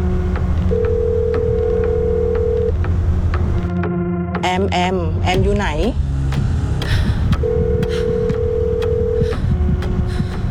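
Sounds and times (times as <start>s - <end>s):
low hum: 0.0s - 10.5s
phone ringback tone: 0.7s - 2.8s, 7.4s - 9.3s
speech: 4.7s - 6.0s.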